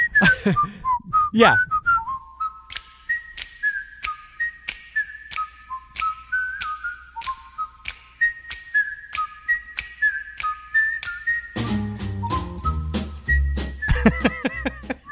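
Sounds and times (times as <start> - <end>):
laughter: 0.0 - 1.8, 13.9 - 15.0
person whistling a TV theme tune: 0.0 - 15.0
speech: 0.2 - 1.7.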